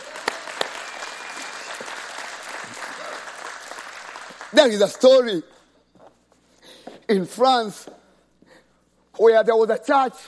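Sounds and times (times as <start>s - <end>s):
audience applauding: 0.0s - 5.0s
speech: 4.5s - 5.5s, 7.1s - 8.0s, 9.2s - 10.2s.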